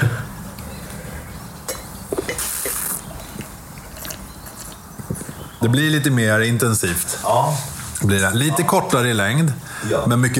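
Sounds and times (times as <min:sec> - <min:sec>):
champagne glasses clinking in a toast: 0:01.7 - 0:04.3
speech: 0:05.6 - 0:10.3.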